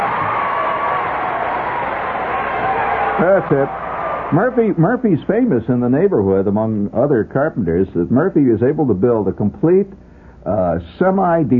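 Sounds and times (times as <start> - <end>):
audience cheering: 0.0 - 5.6
speech: 3.2 - 11.5.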